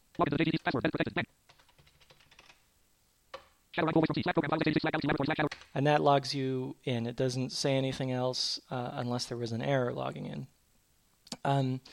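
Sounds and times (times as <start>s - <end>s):
speech: 0.2s - 1.4s, 3.8s - 10.6s, 11.4s - 11.9s
username and password typed on a computer keyboard: 1.5s - 2.6s.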